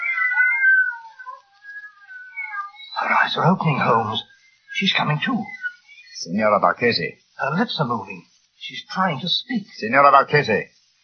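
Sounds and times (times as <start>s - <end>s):
several cats meowing in an overlapping chorus: 0.0s - 6.2s
speech: 3.0s - 5.6s, 6.2s - 10.8s.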